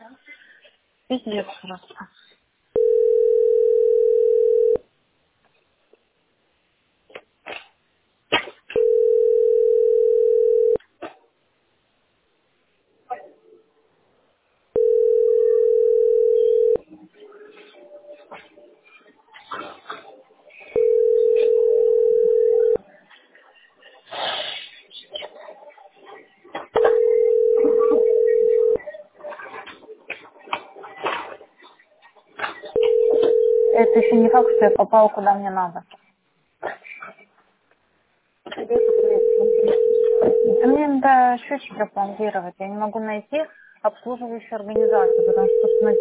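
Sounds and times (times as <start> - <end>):
speech: 1.1 - 2.2, 34.6 - 36.0, 40.7 - 45.9
telephone line tone while waiting on hold in a billing centre phone queue: 2.8 - 4.8, 8.8 - 10.8, 14.8 - 16.8, 20.8 - 22.8, 26.8 - 28.8, 32.8 - 34.8, 38.7 - 40.8, 44.8 - 45.9.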